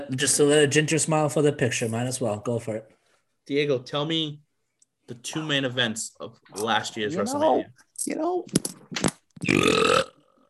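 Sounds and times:
speech: 0:00.0 - 0:04.4, 0:05.1 - 0:10.1
long loud croaking burp: 0:09.4 - 0:10.4.

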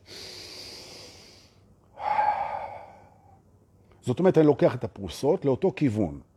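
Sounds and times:
deep breathing: 0:00.0 - 0:03.4
speech: 0:04.0 - 0:06.3.

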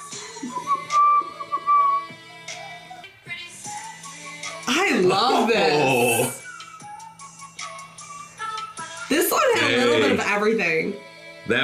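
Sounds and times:
whistled melody: 0:00.0 - 0:04.7, 0:05.7 - 0:09.5
steady music backing: 0:00.0 - 0:11.6
speech: 0:04.7 - 0:06.0, 0:10.2 - 0:11.6.

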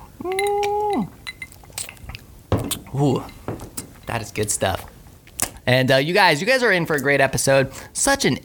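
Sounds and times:
speech: 0:00.2 - 0:00.6, 0:02.9 - 0:03.4, 0:04.1 - 0:04.9, 0:05.6 - 0:08.4
brief glass ringing chime: 0:00.3 - 0:01.6
glasses clinking in a birthday toast: 0:00.3 - 0:02.0, 0:02.6 - 0:04.4.

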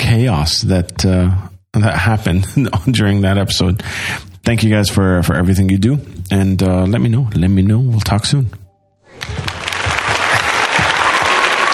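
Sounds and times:
speech: 0:00.2 - 0:08.6
clapping: 0:09.2 - 0:11.7.

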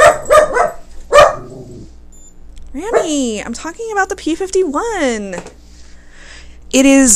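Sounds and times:
dog barking: 0:00.0 - 0:01.7, 0:02.9 - 0:03.2
speech: 0:02.8 - 0:05.6, 0:06.7 - 0:07.1.

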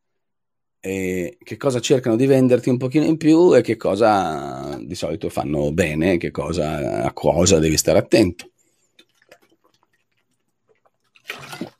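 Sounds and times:
speech: 0:00.8 - 0:08.5
gulping splash: 0:08.5 - 0:11.7
person drinking water: 0:08.5 - 0:11.7.

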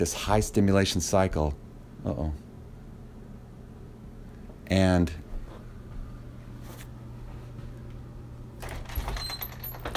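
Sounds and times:
speech: 0:00.0 - 0:02.4, 0:04.7 - 0:05.2
front door opening with rattling slide and clatter: 0:08.6 - 0:09.9.

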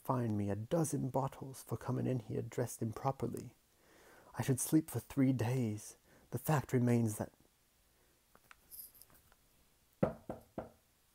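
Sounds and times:
speech: 0:00.1 - 0:03.6, 0:04.4 - 0:07.4
faint rustles: 0:08.3 - 0:09.5
butler knocking firmly on a door: 0:10.0 - 0:10.8.

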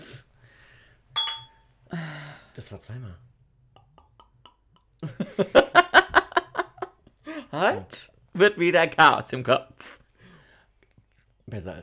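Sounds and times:
glasses clinking together in a toast: 0:01.2 - 0:01.6
speech: 0:02.6 - 0:03.4, 0:05.4 - 0:05.8, 0:07.5 - 0:10.0, 0:11.5 - 0:11.8
laughter: 0:05.0 - 0:07.0.

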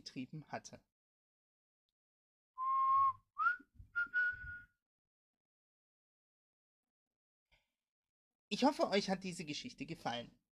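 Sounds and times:
speech: 0:00.0 - 0:00.9, 0:08.5 - 0:10.4
person whistling eerie phrases: 0:02.6 - 0:04.8.

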